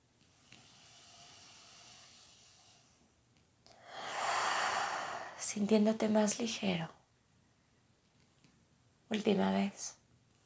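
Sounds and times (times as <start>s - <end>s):
deep breathing in through the nose and out through the mouth during a guided exercise: 0.3s - 5.6s
speech: 5.5s - 7.0s, 9.2s - 10.0s.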